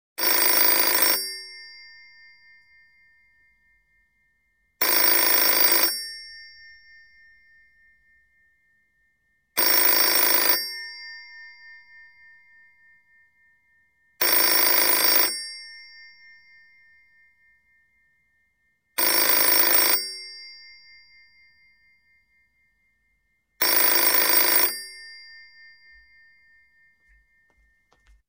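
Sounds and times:
European telephone ringing in an office: 0.2s - 1.9s, 4.8s - 6.5s, 9.6s - 11.5s, 14.2s - 15.8s, 19.0s - 20.7s, 23.6s - 27.3s.

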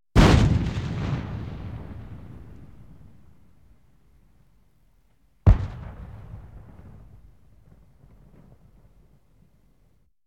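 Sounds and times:
M1 tank cannon firing: 0.2s - 3.3s, 5.5s - 8.7s.

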